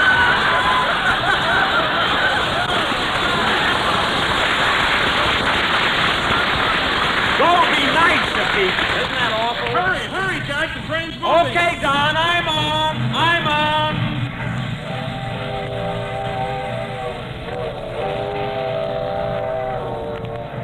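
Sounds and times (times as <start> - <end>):
laughter: 0.0 - 5.6
train pulling out of a station: 0.0 - 20.6
whistle-like tones: 14.8 - 20.6.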